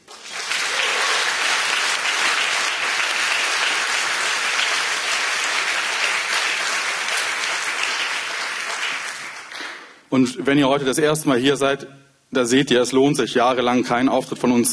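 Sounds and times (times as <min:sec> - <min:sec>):
sizable audience applauding at a live stage show: 0:00.0 - 0:10.0
speech: 0:10.2 - 0:14.7.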